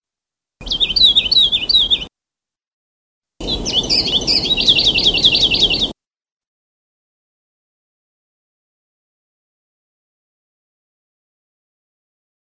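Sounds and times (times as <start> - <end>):
Sulawesi leaf warbler singing rapid high notes: 0.6 - 2.1, 3.4 - 6.0.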